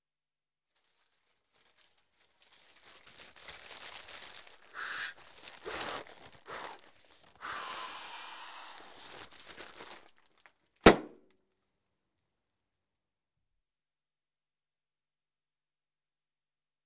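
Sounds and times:
bag bursting: 0:02.8 - 0:10.1, 0:10.8 - 0:11.2.

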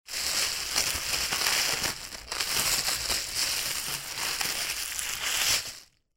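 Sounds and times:
bag rustling: 0:00.1 - 0:05.9.

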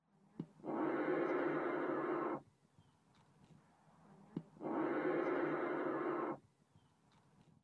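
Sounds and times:
male great bustard displaying: 0:00.4 - 0:02.4, 0:04.4 - 0:06.4.

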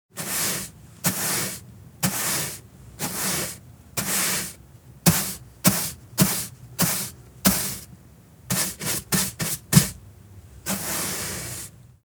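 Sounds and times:
floor being swept: 0:00.2 - 0:07.9, 0:08.5 - 0:10.0, 0:10.6 - 0:11.8.

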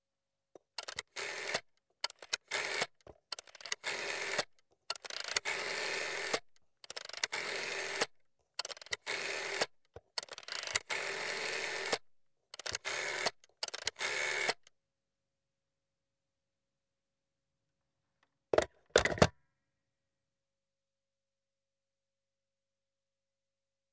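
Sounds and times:
telephone rotary dial being turned: 0:00.8 - 0:12.0, 0:12.6 - 0:14.6.

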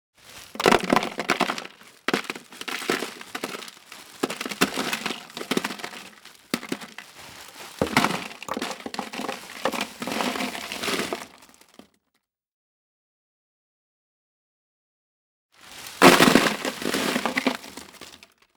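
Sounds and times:
ice being poured: 0:00.2 - 0:11.6, 0:15.6 - 0:18.2.

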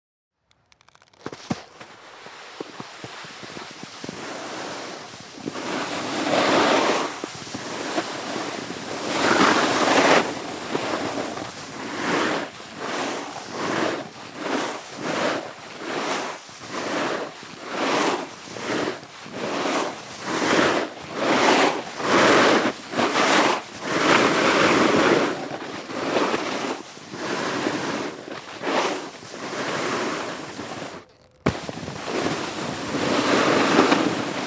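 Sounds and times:
snowboard riding and jumps: 0:01.0 - 0:34.4.

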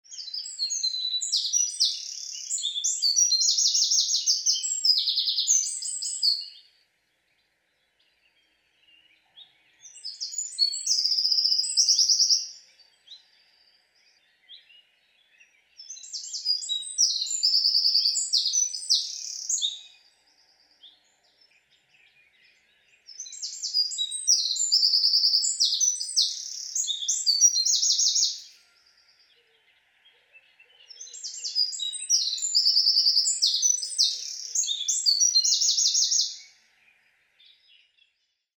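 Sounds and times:
wren singing: 0:00.0 - 0:06.7, 0:07.3 - 0:38.3.

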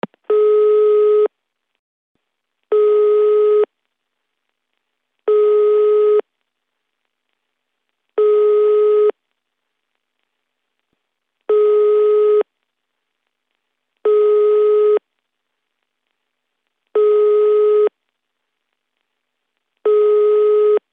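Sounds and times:
long dial tones: 0:00.3 - 0:01.3, 0:02.7 - 0:03.7, 0:05.3 - 0:06.2, 0:08.2 - 0:09.2, 0:11.5 - 0:12.5, 0:14.0 - 0:15.0, 0:16.9 - 0:17.9, 0:19.8 - 0:20.8.

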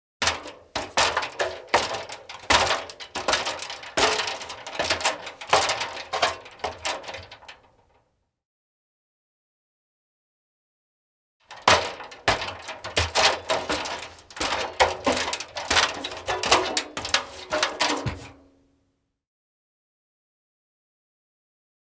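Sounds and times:
people climbing a stepladder: 0:00.2 - 0:07.6, 0:11.5 - 0:18.5.

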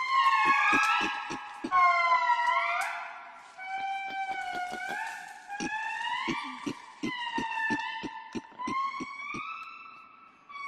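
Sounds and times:
lemur calls: 0:00.2 - 0:02.0, 0:03.7 - 0:09.5.

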